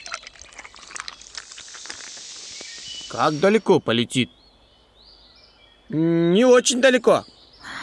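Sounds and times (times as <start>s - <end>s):
water pouring into a small toy rocket: 0.0s - 3.8s
speech: 3.1s - 4.4s, 5.9s - 7.3s.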